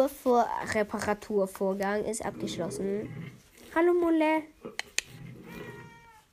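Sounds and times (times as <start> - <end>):
speech: 0.0 - 4.9
sharp clicks: 4.8 - 5.1
cat meowing: 5.4 - 6.3.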